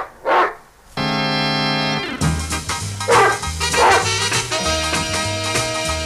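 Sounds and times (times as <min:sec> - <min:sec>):
dog barking: 0:00.0 - 0:00.6, 0:03.1 - 0:04.2
instrumental music: 0:01.0 - 0:06.0.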